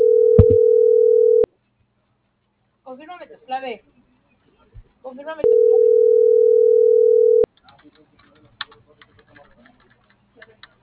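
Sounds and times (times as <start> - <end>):
telephone line tone while a call is dialed: 0.0 - 1.5, 5.4 - 7.4
low knock: 0.4 - 0.6
speech: 2.9 - 3.9, 5.0 - 6.3.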